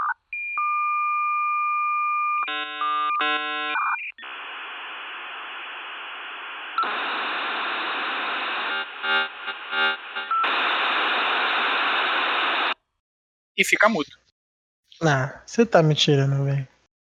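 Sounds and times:
shrill digital beeps over a phone line: 0.0s - 4.3s, 8.8s - 10.6s
long hissing screeching static on a phone line: 2.5s - 12.8s
speech: 3.2s - 3.4s, 13.6s - 14.2s, 15.0s - 16.7s.

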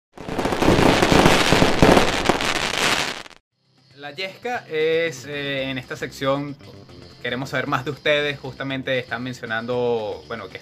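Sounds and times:
fireworks crackling and popping with sharp bangs: 0.1s - 3.4s
speech: 4.0s - 10.6s.

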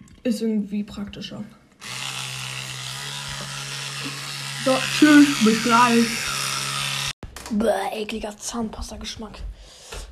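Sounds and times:
speech: 0.2s - 1.6s, 4.6s - 6.3s, 7.5s - 9.8s
electric toothbrush buzzing: 1.8s - 7.2s.

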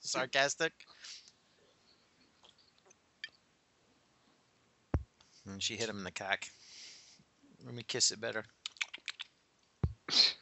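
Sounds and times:
speech: 0.1s - 1.2s, 5.5s - 6.6s, 7.6s - 8.6s, 10.1s - 10.4s
wet mouth clicks: 8.6s - 9.3s.

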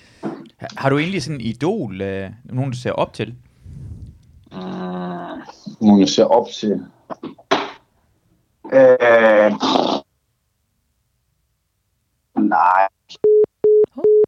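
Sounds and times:
speech: 0.8s - 3.5s, 6.0s - 7.2s, 8.7s - 9.9s
phone line busy-style tone signalling a cut-off call: 13.2s - 14.2s.

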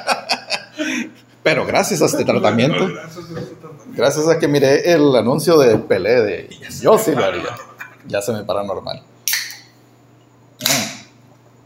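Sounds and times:
laughter: 0.0s - 1.3s, 2.0s - 4.0s, 6.5s - 8.1s
speech: 1.5s - 9.1s
beer can snapping open with a pop and fizzing hiss: 9.3s - 9.6s.

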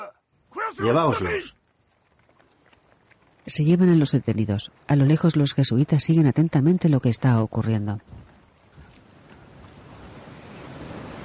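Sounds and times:
speech: 0.7s - 1.6s, 3.5s - 8.3s
wind noise: 1.4s - 11.2s
sea waves washing against a beach: 8.3s - 11.2s.

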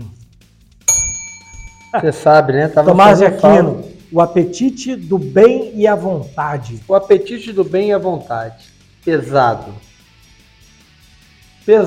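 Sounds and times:
small bell struck once: 0.9s - 2.2s
speech: 1.9s - 9.9s, 11.7s - 11.8s.

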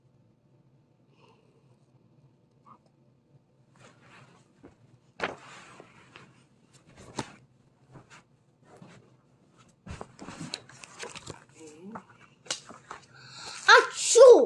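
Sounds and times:
small shuffling sounds: 3.6s - 13.7s
loud voiced sneeze: 13.8s - 14.2s.

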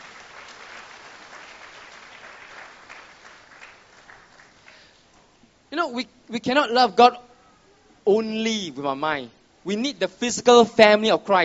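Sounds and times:
large audience clapping: 0.0s - 4.9s
scattered individual claps: 0.0s - 4.9s
speech: 5.8s - 7.3s, 8.0s - 11.4s.

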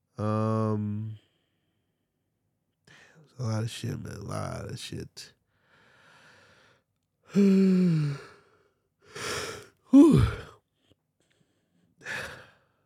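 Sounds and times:
speech: 3.4s - 5.4s, 7.3s - 8.3s
shorter breathy exhales and sighs: 5.6s - 10.6s, 12.0s - 12.7s
long drawn-out yawn with a voiced falling groan: 7.3s - 8.2s, 9.4s - 10.6s.

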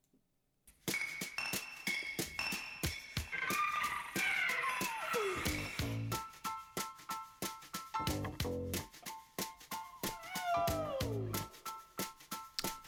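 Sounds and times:
song with busy rhythmic backing and steady beats: 0.9s - 12.8s
voice bending and sliding through high wailing notes: 3.3s - 5.8s, 10.2s - 11.4s.

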